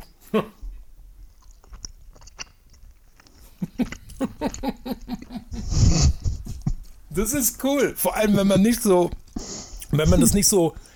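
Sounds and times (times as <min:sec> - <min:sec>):
speech: 0:00.3 - 0:00.6, 0:07.2 - 0:09.2, 0:10.0 - 0:10.8
crunchy chewing on hard mountain cheese: 0:01.2 - 0:07.1.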